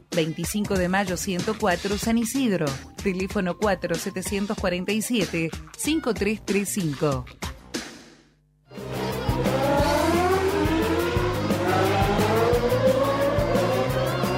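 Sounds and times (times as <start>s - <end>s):
speech: 0.2s - 7.5s
Formula 1 race car engine from a Williams team car screaming at high revs: 8.9s - 14.3s.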